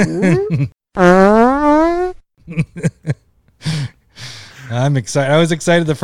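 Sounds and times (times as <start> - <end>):
speech: 0.0 - 1.4, 2.5 - 2.9, 4.7 - 6.0
fart sound effects: 1.0 - 2.2.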